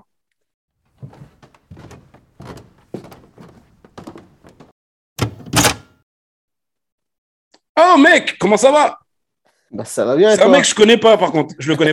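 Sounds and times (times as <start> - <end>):
door thud: 1.0 - 6.0
speech: 7.8 - 9.0, 9.7 - 11.9.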